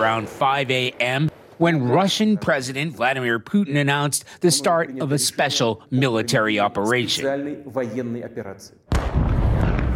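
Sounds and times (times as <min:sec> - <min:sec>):
speech: 0:00.0 - 0:09.2
loud thunderous explosion from airstrikes: 0:08.9 - 0:09.9.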